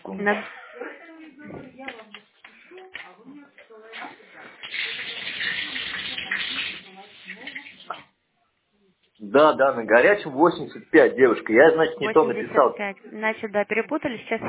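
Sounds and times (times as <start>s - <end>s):
speech: 0.2s - 0.6s, 9.3s - 14.4s
water running from a tap: 4.6s - 8.1s.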